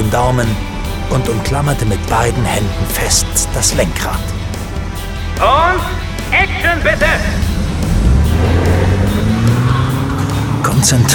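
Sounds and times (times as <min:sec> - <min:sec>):
stunt jeep engine roaring as it speeds toward a scrapyard gate at about 100 km/h: 0:00.0 - 0:11.1
speech: 0:00.1 - 0:04.4, 0:05.4 - 0:07.5, 0:10.8 - 0:11.1.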